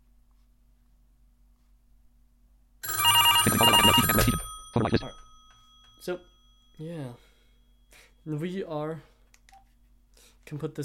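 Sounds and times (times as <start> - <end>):
rotary telephone bell ringing: 2.8 - 8.0
speech: 6.0 - 7.3, 8.2 - 9.1, 10.5 - 10.8.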